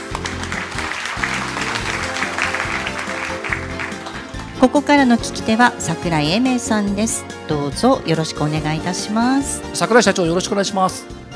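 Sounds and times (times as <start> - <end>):
audience applause at an investor event in Osaka: 0.0 - 5.4
music: 0.0 - 11.3
speech: 4.6 - 11.3.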